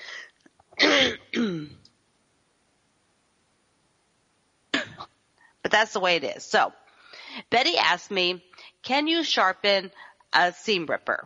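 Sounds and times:
throat clearing while taking a cough drop: 0.8s - 1.8s
speech: 5.8s - 6.8s, 7.4s - 11.2s.

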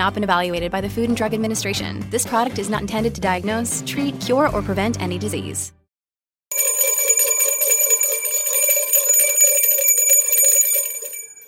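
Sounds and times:
speech: 0.0s - 5.8s
bright metallic bell ringing: 6.5s - 11.4s.

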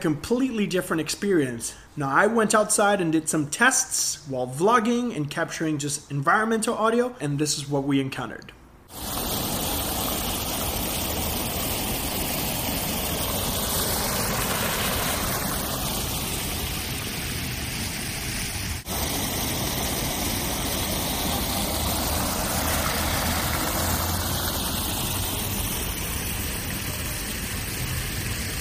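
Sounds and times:
speech: 0.0s - 9.2s
outdoor water fountain splashing: 8.9s - 28.5s.

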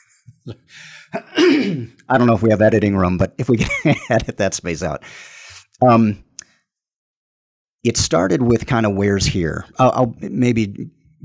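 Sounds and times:
speech: 0.4s - 6.2s, 7.8s - 11.2s
person clearing throat: 1.1s - 2.0s
laughter: 3.5s - 4.6s.

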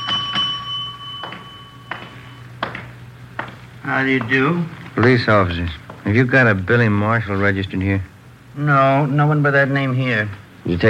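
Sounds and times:
hotel desk bell dinging at the front desk: 0.0s - 4.4s
low steady hum: 0.0s - 10.8s
speech: 3.9s - 10.8s.

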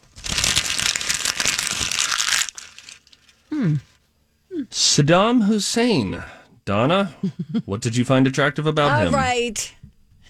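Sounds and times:
paper crinkling: 0.0s - 3.5s
speech: 3.6s - 3.9s, 4.7s - 9.8s.

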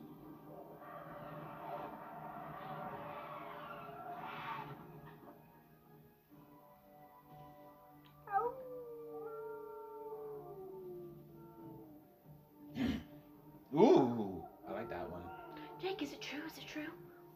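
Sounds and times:
wolf howling: 0.6s - 5.2s, 8.1s - 12.4s, 13.7s - 16.5s
people talking: 13.8s - 17.0s.

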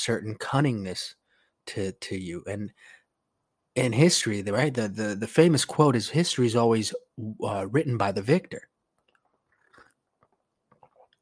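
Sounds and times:
speech: 0.0s - 3.0s, 3.8s - 8.7s
sipping hot tea: 9.0s - 11.1s.

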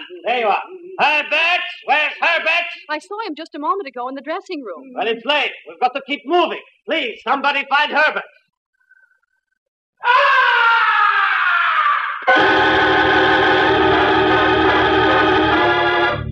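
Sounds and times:
speech: 0.2s - 8.4s
loud piercing scream with siren-like wails: 10.0s - 16.2s.

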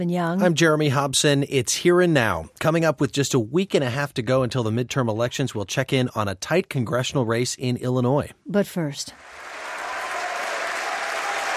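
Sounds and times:
speech: 0.0s - 9.4s
sustained applause from members of Parliament in Canada: 9.2s - 11.5s.

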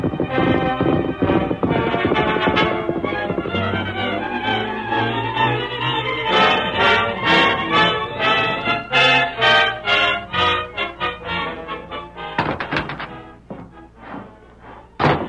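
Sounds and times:
horse hooves clip-clopping at a trotting pace: 0.0s - 8.3s
dramatic orchestral music: 0.0s - 15.2s.

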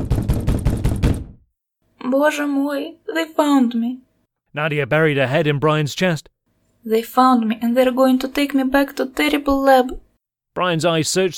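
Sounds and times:
heavy booming knocks: 0.0s - 1.5s
speech: 2.1s - 10.0s, 10.6s - 11.3s.

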